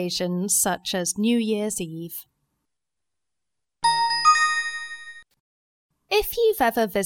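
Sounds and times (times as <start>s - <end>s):
speech: 0.0s - 2.3s, 6.1s - 7.0s
clock bell of the Houses of Parliament in London chiming: 3.8s - 5.2s.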